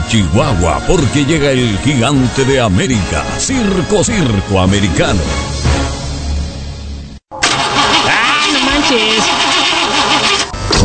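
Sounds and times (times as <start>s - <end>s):
speech: 0.1s - 6.0s
car engine with new seals and spark plugs cranking but failing to start: 7.4s - 10.8s.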